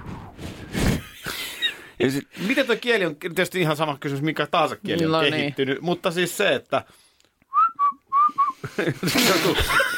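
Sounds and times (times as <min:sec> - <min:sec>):
speech: 0:02.0 - 0:07.1, 0:08.3 - 0:09.9
person whistling in a whistled language demonstration: 0:07.5 - 0:08.6
laughter: 0:08.6 - 0:09.9.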